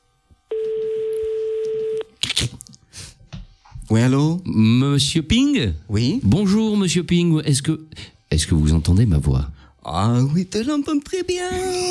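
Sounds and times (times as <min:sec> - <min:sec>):
telephone ringback tone during a call: 0:00.5 - 0:02.1
speech: 0:03.9 - 0:11.8.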